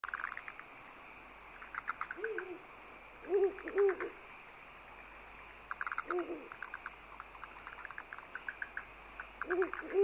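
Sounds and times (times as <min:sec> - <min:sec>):
owl hooting: 0:01.8 - 0:04.2, 0:05.8 - 0:06.8, 0:09.4 - 0:10.0.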